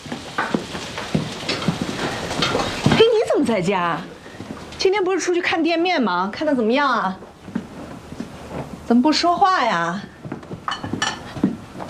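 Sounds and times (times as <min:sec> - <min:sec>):
food sizzling in a pan: 0:00.0 - 0:04.6
speech: 0:03.5 - 0:04.2, 0:04.8 - 0:07.3, 0:08.9 - 0:10.1.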